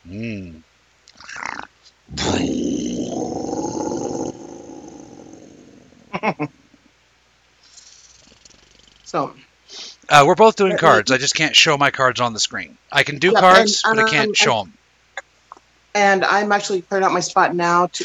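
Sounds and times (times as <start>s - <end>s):
person imitating a gravelly animal growl: 0.0s - 0.6s, 1.2s - 6.1s
speech: 0.1s - 0.7s, 10.1s - 14.8s, 16.0s - 18.0s.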